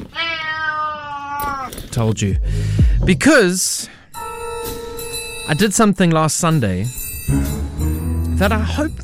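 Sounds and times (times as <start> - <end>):
cat meowing and yowling: 0.1 - 1.8
speech: 1.9 - 3.9, 5.5 - 7.5, 8.4 - 9.0.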